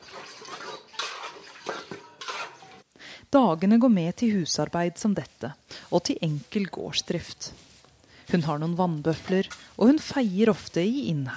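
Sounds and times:
clatter of plates and cutlery washed by hand outdoors in rural India: 0.0 - 2.8
water splashing and sloshing in a farmyard in rural India: 0.0 - 2.8
speech: 3.3 - 7.7, 8.3 - 11.3.

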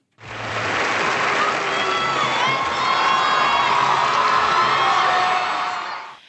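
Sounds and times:
large audience booing at an award ceremony: 0.2 - 6.2
people shouting in an award ceremony audience: 0.4 - 6.2.

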